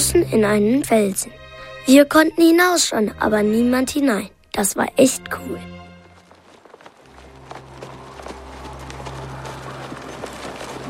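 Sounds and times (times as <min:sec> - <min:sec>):
speech: 0:00.1 - 0:05.7
horses' hooves clip-clopping in a trotting rhythm: 0:05.7 - 0:10.8.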